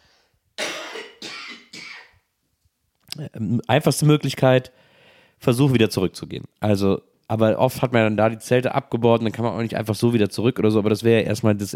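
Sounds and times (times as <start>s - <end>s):
faint breath: 0.0s - 0.4s, 4.7s - 5.4s
person coughing harshly: 0.6s - 2.2s
speech: 3.2s - 4.8s, 5.4s - 11.7s.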